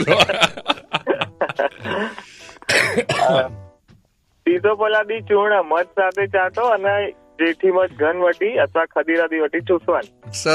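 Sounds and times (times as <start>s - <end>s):
laughter: 0.0s - 2.3s
person coughing from a cough lasting about two weeks: 1.8s - 3.6s
throat clearing: 2.6s - 3.5s
speech: 4.5s - 10.5s.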